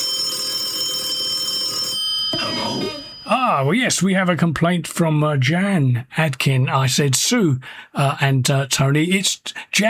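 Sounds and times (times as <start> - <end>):
telephone ringing with a bright metallic trill: 0.0 - 3.6
speech: 2.3 - 9.8.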